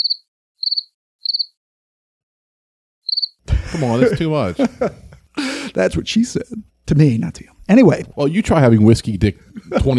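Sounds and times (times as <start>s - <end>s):
comic crickets chirping sound effect: 0.0s - 1.5s, 3.1s - 3.4s
speech: 0.2s - 1.8s, 3.2s - 5.1s, 5.7s - 9.9s
laughter: 3.5s - 6.6s, 9.0s - 9.9s.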